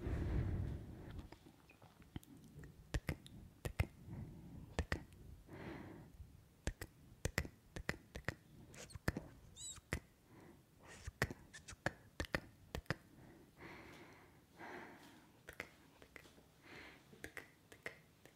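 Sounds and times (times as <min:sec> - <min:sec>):
soft breaths: 0:00.0 - 0:06.4, 0:08.4 - 0:11.9, 0:12.9 - 0:17.3
dry mouth clicks and tongue ticks: 0:02.0 - 0:04.0, 0:04.7 - 0:05.2, 0:06.6 - 0:10.1, 0:10.8 - 0:13.1, 0:15.5 - 0:16.3, 0:17.2 - 0:18.3
wet kissing sounds: 0:02.9 - 0:04.0, 0:06.7 - 0:10.1, 0:10.8 - 0:13.0, 0:17.2 - 0:18.3.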